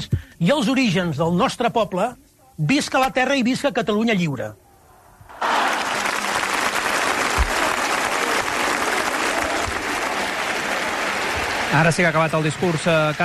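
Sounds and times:
speech: 0.0 - 4.6, 11.7 - 13.2
large crowd applause: 5.3 - 13.2.

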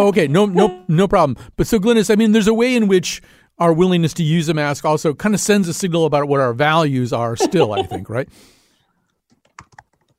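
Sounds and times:
speech: 0.0 - 8.6
laughter: 7.4 - 8.2
typing on a computer keyboard: 9.3 - 10.1.

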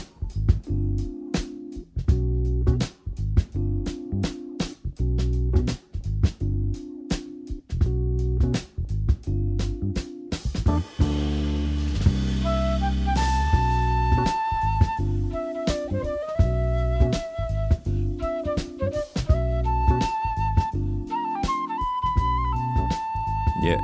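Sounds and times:
bass: 0.0 - 23.8
busy jazz drumming: 0.0 - 23.8
bright agile jazz flute solo: 12.3 - 23.8.

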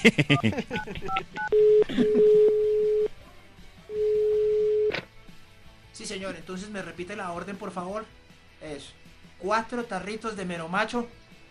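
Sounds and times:
speech: 0.0 - 2.4, 6.0 - 11.2
touch-tone keypad beeps as a phone number is dialed: 1.1 - 3.1
phone ringing tones: 1.2 - 3.1, 3.9 - 4.9.

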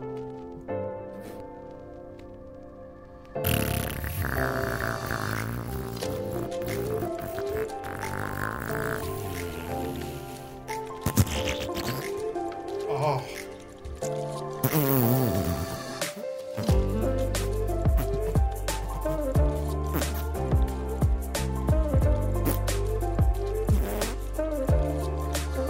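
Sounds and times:
wet squishy fart sounds: 3.4 - 20.8, 21.9 - 22.9, 23.6 - 25.6
quiet buzzy tonal rasp: 3.5 - 21.5, 22.2 - 25.6.

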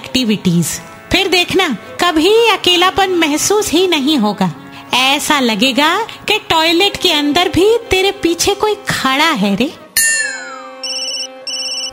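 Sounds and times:
speech: 0.2 - 9.8
bright chime: 10.0 - 11.9
warbling electronic phone ringtone: 10.0 - 11.9.

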